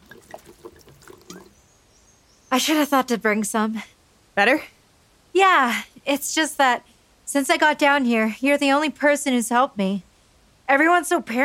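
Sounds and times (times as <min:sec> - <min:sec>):
water being poured or drunk: 0:00.0 - 0:01.6
speech: 0:02.5 - 0:04.8, 0:05.4 - 0:10.1, 0:10.7 - 0:11.4.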